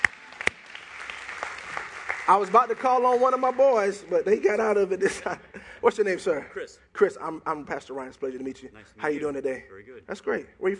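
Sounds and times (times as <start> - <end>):
crowd applauding for a volunteer: 0.0 - 4.1
sharp closer claps: 0.0 - 4.1
speech: 2.3 - 10.7.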